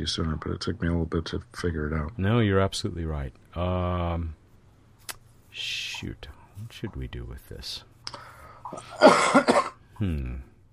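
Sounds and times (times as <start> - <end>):
speech: 0.0 - 4.4, 5.6 - 10.5
harsh coughs: 8.7 - 9.8.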